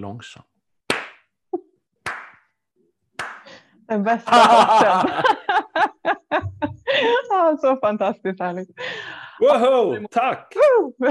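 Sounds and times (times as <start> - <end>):
speech: 0.0 - 0.5, 3.9 - 11.0
slow sharp hand claps: 0.9 - 1.3, 2.0 - 2.5, 3.2 - 3.6
laughter: 4.2 - 7.3.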